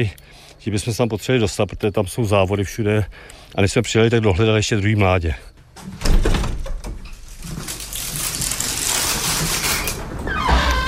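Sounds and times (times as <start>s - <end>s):
speech: 0.0s - 6.1s
aviary door scraping and rattling as it is opened: 5.8s - 10.8s.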